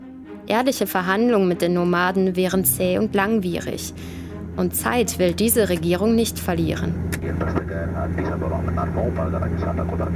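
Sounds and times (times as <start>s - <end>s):
speech: 0.5s - 10.1s
airplane cabin engine hum during a flight to Addis Ababa: 2.7s - 10.1s
voices murmuring: 7.2s - 10.1s.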